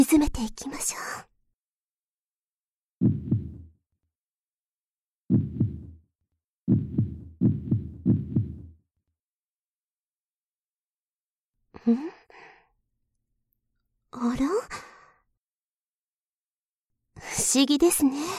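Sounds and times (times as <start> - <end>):
speech: 0.0 - 1.3, 11.9 - 12.2, 14.2 - 14.9, 17.2 - 18.3
heartbeat thumps in double pulses: 3.0 - 3.7, 5.3 - 6.0, 6.7 - 8.8.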